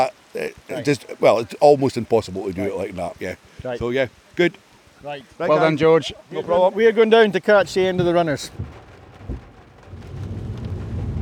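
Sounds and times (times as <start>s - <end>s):
speech: 0.0s - 8.8s
heavy rain pounding on a car roof: 0.0s - 11.1s
low thump: 7.6s - 11.1s.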